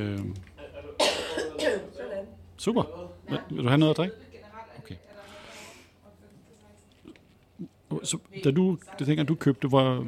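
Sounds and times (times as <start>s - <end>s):
faint murmur of voice-like sound: 0.0s - 10.0s
harsh coughs: 1.0s - 1.9s
speech: 2.6s - 5.1s, 7.6s - 10.0s.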